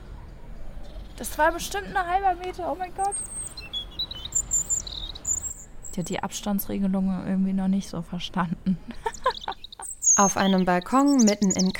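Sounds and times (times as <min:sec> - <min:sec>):
European robin singing on a balcony in Cologne: 0:00.9 - 0:06.7, 0:09.0 - 0:11.7
speech: 0:01.2 - 0:03.4, 0:06.0 - 0:09.2, 0:10.2 - 0:11.7
laughter: 0:08.9 - 0:10.0.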